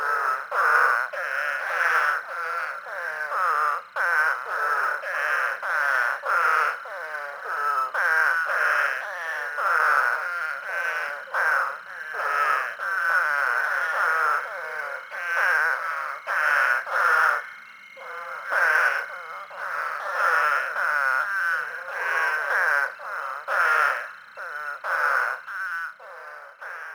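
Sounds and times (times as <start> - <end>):
Eastern spadefoot calling: 0.0 - 26.9.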